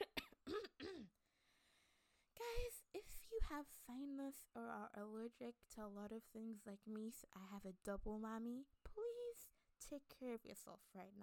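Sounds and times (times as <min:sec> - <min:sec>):
person coughing: 0:00.0 - 0:01.1
speech: 0:03.5 - 0:11.2.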